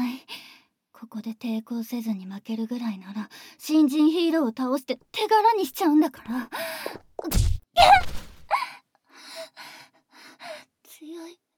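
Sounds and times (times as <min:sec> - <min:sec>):
speech: 0:01.0 - 0:08.2
heavy punch landing with a deep thud: 0:07.2 - 0:08.5.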